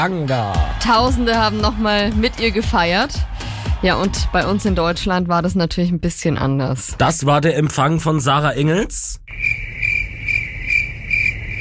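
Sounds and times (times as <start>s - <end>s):
speech: 0.0s - 9.5s
crickets chirping: 9.3s - 11.5s.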